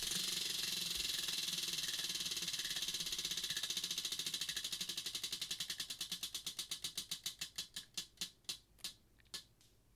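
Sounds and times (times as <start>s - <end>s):
spinning prize wheel ticking: 0.0s - 7.6s.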